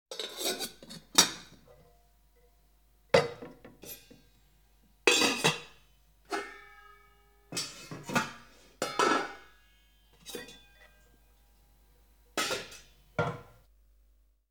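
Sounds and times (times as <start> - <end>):
pots and pans rattling: 0.1 - 1.7, 3.2 - 4.2, 5.1 - 6.7, 7.5 - 9.5.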